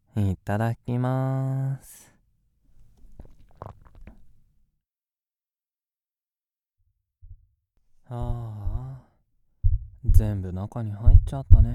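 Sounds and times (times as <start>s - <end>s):
speech: 0.2s - 2.0s, 8.1s - 8.6s, 10.1s - 11.7s
deep internal gurgling and squelching: 2.7s - 4.4s
soft low heartbeat thumps: 7.2s - 7.5s, 8.1s - 10.4s, 11.0s - 11.7s.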